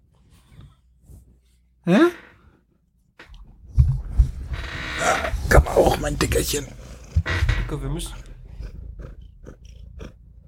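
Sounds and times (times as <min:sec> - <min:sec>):
speech: 0:01.8 - 0:02.2, 0:06.0 - 0:08.2
male cat purring into the microphone: 0:03.6 - 0:10.4
person talking softly: 0:05.0 - 0:06.8.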